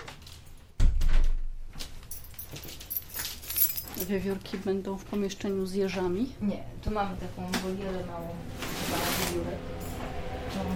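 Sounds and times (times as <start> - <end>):
door swinging shut with a thud: 0.8 - 1.6
speech: 4.0 - 9.8.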